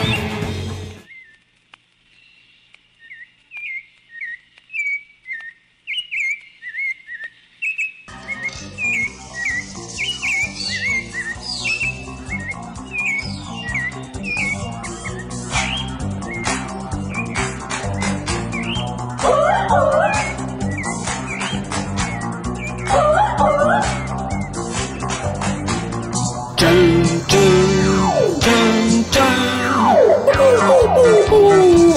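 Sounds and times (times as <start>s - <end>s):
birds chirping and singing: 2.1s - 31.9s.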